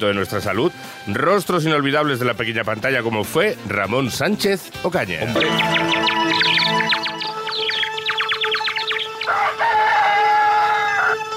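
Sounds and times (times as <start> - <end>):
speech: 0.0 - 7.0
fowl clucking and chirping: 5.3 - 11.2
rooster crowing: 7.7 - 11.2.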